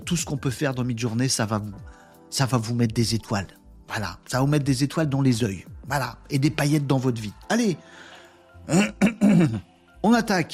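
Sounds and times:
speech: 0.1s - 8.1s, 8.7s - 10.5s
man clearing throat with rough coughs: 8.6s - 9.7s.

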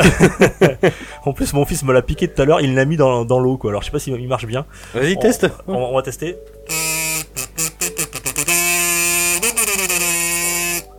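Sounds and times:
speech: 0.0s - 7.5s
buzzy kazoo being tested: 6.7s - 10.9s.

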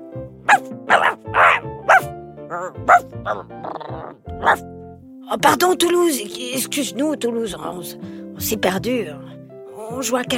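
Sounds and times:
dog barking in its kennel in a garden: 0.5s - 3.5s, 4.4s - 4.6s
speech: 2.8s - 3.8s, 5.3s - 9.3s, 9.9s - 10.3s.

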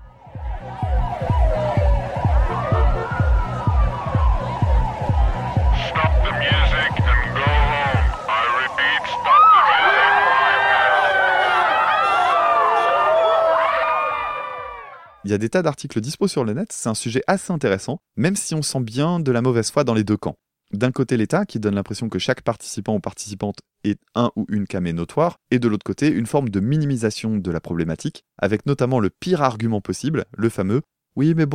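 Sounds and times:
pounding rhythmic beat of a music track: 0.0s - 8.3s
police intervention sirens wailing: 0.0s - 15.2s
overlapping crowd noise and voices: 0.4s - 13.2s
speech: 15.3s - 31.5s.

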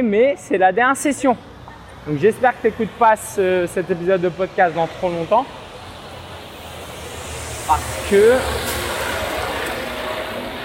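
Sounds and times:
speech: 0.0s - 5.6s, 7.7s - 8.8s
cement mixer truck passing close by: 5.5s - 10.6s.

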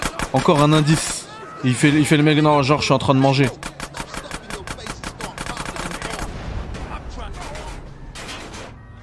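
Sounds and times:
gunfire in a video game: 0.0s - 1.3s, 3.5s - 9.0s
speech: 0.3s - 3.7s.

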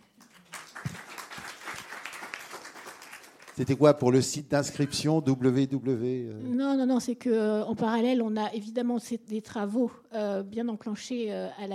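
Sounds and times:
audience applause: 0.2s - 4.0s
speech: 3.6s - 11.7s.

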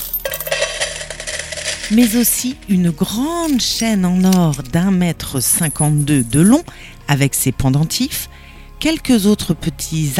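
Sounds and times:
metal coins spilling and clinking: 0.0s - 6.6s
speech: 1.9s - 10.1s.

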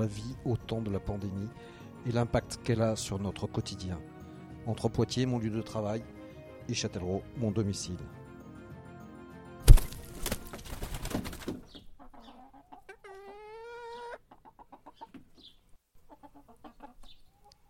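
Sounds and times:
speech: 0.0s - 8.2s
hens clucking and squawking: 10.0s - 17.6s.

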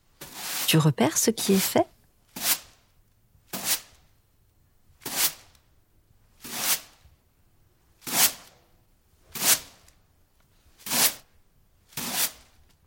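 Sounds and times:
broom sweeping the floor: 0.0s - 2.9s, 3.5s - 4.1s, 5.0s - 5.6s, 6.3s - 7.2s, 8.0s - 8.5s, 9.2s - 9.9s, 10.6s - 11.3s, 11.9s - 12.7s
speech: 0.7s - 1.9s.

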